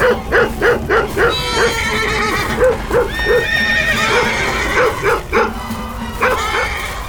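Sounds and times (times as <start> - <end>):
dog barking at horses in sharp yaps: 0.0 - 1.8, 2.5 - 5.6, 6.2 - 6.8
laughter: 0.0 - 7.0.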